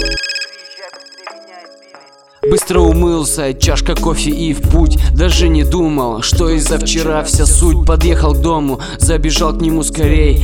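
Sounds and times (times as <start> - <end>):
mobile phone ringtone electronic melody: 0.0 - 3.0
speech: 2.4 - 10.4.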